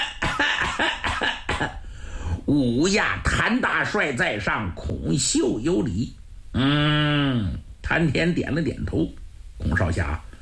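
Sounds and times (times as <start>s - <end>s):
storyteller coughing, imitating a character clearing his throat: 0.0s - 1.8s
speech: 1.6s - 1.8s, 2.5s - 10.3s.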